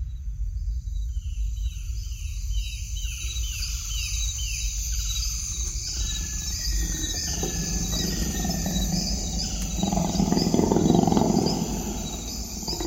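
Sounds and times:
jungle insects chirping: 0:00.1 - 0:12.8
jungle birds: 0:02.9 - 0:12.8
tiger growling and roaring: 0:06.7 - 0:12.8.

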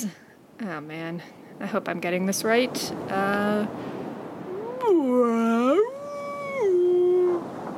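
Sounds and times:
speech: 0:00.0 - 0:03.9
voice imitating a blue whale call: 0:04.5 - 0:07.5.

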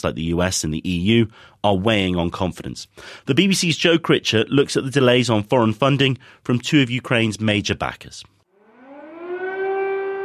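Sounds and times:
speech: 0:00.0 - 0:08.4
air raid siren wailing: 0:08.5 - 0:10.2.

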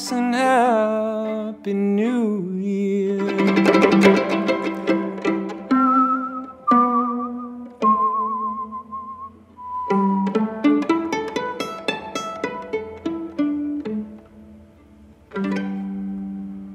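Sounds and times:
plucked acoustic accompaniment: 0:00.0 - 0:16.7
speech: 0:00.1 - 0:02.9
person whistling a slow wavering melody with vibrato: 0:05.6 - 0:10.5.

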